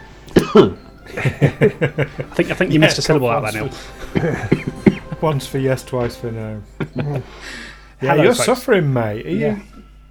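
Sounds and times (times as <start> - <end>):
raspy coughs: 0.3 - 2.7, 3.6 - 5.3
laughter: 0.4 - 8.7
speech: 0.5 - 9.8.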